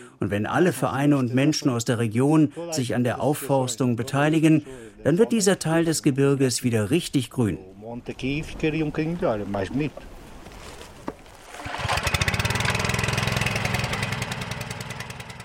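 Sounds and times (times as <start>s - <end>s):
speech: 0.2s - 10.1s
small motor water pump starting and running: 11.5s - 15.4s.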